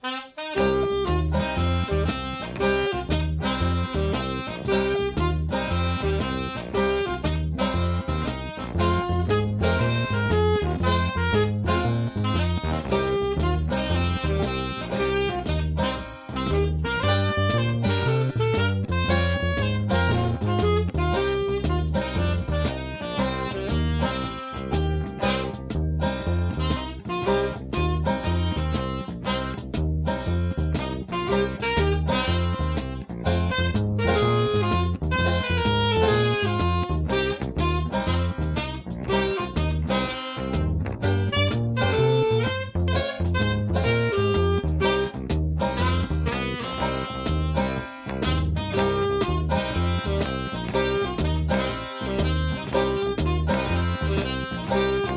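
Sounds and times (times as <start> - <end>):
groovy swing music: 0.0 - 55.1.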